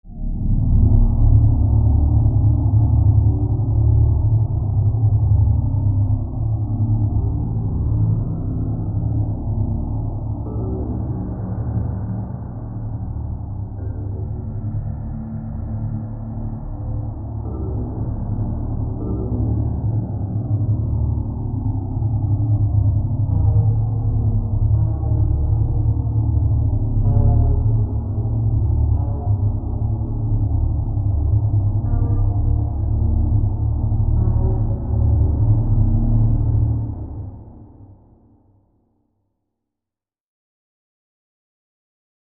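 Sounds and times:
eerie low music with synth pads: 0:00.1 - 0:38.4.

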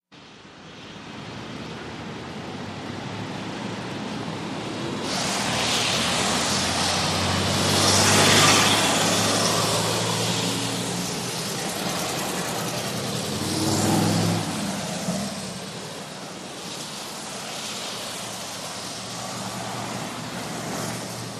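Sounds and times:
busy traffic on wet road: 0:00.2 - 0:21.3.

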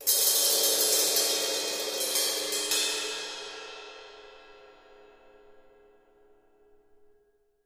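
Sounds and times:
cymbal trill: 0:00.0 - 0:05.8.

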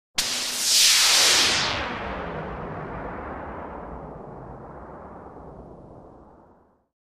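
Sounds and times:
long synth zap whoosh: 0:00.2 - 0:06.6.

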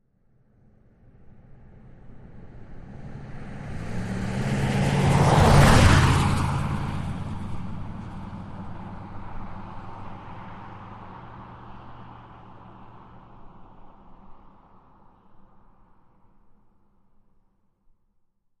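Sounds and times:
Jeep Wagoneer engine revving at medium speed: 0:03.1 - 0:10.8.

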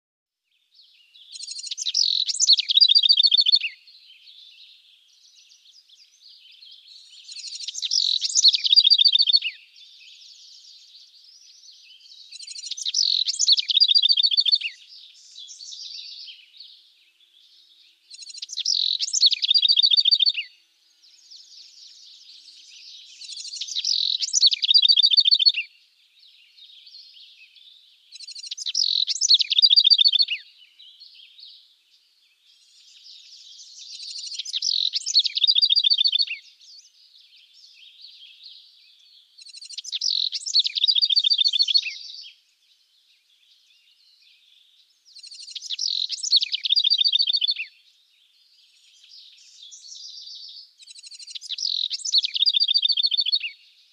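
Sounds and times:
house wren chirping: 0:01.2 - 0:04.4, 0:05.2 - 0:16.7, 0:18.1 - 0:20.5, 0:21.1 - 0:25.7, 0:28.1 - 0:30.4, 0:32.6 - 0:38.2, 0:39.4 - 0:42.3, 0:45.1 - 0:47.7, 0:48.8 - 0:53.6.

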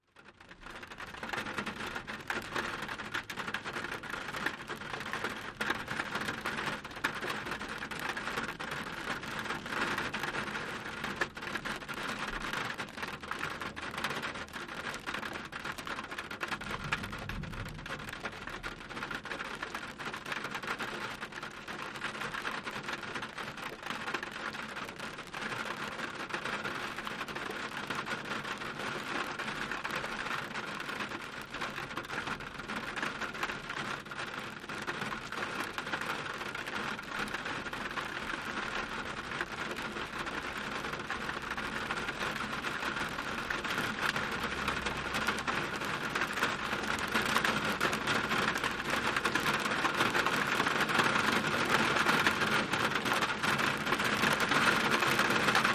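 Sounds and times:
light to heavy rain: 0:00.0 - 0:55.7.

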